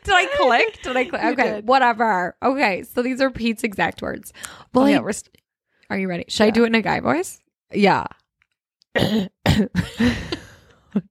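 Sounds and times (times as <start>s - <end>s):
speech: 0.2s - 8.2s, 9.0s - 11.0s
rough forced coughs: 8.9s - 10.4s.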